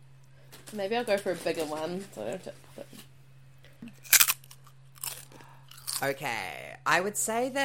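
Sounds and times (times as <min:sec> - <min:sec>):
faint steady hum: 0:00.0 - 0:07.6
speech: 0:00.7 - 0:03.1, 0:06.0 - 0:07.6
softer crackle of chewing: 0:03.9 - 0:06.0
crisp ridged potato chip being bitten: 0:04.0 - 0:06.2.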